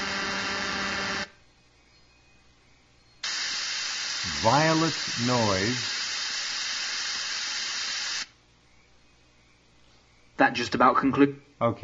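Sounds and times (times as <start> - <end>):
harsh buzzy 200 hertz impulse-wave test tone: 0.0 - 1.4, 3.2 - 8.3
speech: 4.4 - 6.0, 10.4 - 11.8.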